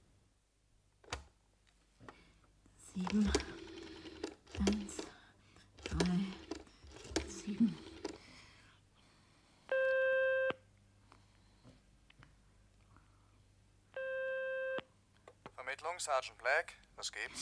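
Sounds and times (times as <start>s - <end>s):
speech: 3.0s - 3.5s, 16.0s - 17.4s
rotary telephone dial whirring as it spins back: 3.0s - 5.2s, 5.8s - 8.2s
telephone ringback tone: 9.7s - 10.6s, 14.0s - 14.8s.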